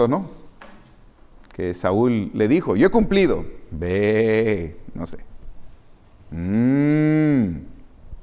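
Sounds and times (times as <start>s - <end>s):
speech: 0.0s - 0.4s, 1.6s - 5.3s, 6.3s - 7.7s
cow mooing: 6.4s - 7.5s.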